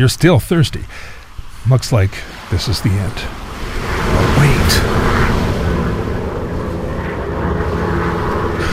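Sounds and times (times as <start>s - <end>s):
speech: 0.0s - 3.4s, 4.1s - 5.2s
rescue airplane engine drone flying overhead: 2.2s - 8.7s.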